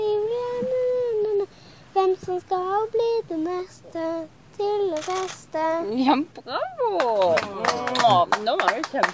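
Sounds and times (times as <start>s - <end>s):
young girl singing a children's song: 0.0s - 6.4s
speech: 2.0s - 9.1s.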